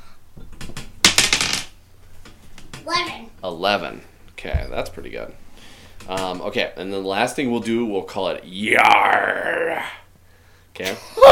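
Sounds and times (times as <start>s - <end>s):
dice rattling and tumbling across a hard surface: 1.0s - 1.8s
speech: 2.9s - 5.4s, 6.0s - 10.0s, 10.8s - 11.2s.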